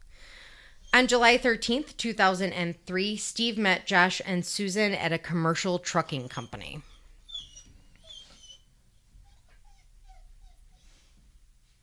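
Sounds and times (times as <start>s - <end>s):
dog whimpering: 0.8s - 1.5s, 6.1s - 11.2s
speech: 1.0s - 6.9s.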